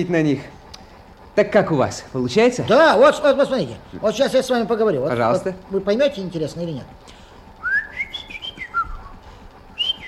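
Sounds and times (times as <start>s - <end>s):
speech: 0.0s - 0.6s, 1.4s - 7.2s
person whistling a tune: 7.6s - 9.1s, 9.8s - 10.0s.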